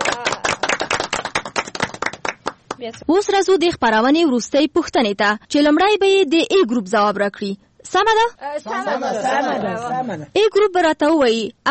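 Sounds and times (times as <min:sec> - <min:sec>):
group clapping for a correct quiz answer: 0:00.0 - 0:03.0
speech: 0:02.8 - 0:11.6.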